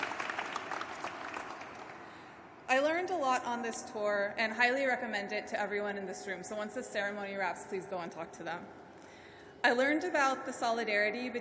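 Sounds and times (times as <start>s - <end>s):
audience applause at a ceremony: 0.0s - 2.2s
speech: 2.7s - 8.8s, 9.6s - 11.3s.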